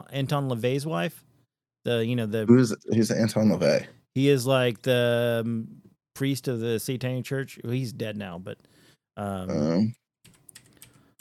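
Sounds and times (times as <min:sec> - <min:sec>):
speech: 0:00.1 - 0:10.0
typing on a computer keyboard: 0:10.2 - 0:11.1.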